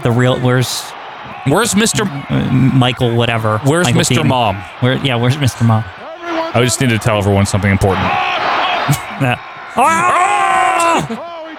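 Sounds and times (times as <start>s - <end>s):
speech: 0.0s - 10.3s, 11.0s - 11.3s
man yelling: 9.8s - 11.5s.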